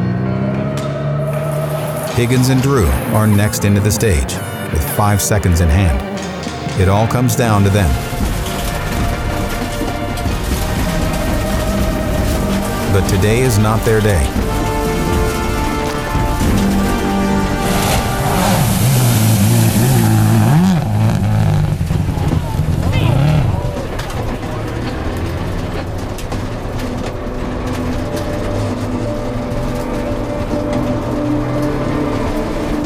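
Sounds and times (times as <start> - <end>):
rally car engine roaring and revving: 0.0 - 32.8
speech: 2.2 - 6.2, 6.8 - 8.2, 13.0 - 14.6
water splash from a rally car plowing through: 7.4 - 22.7.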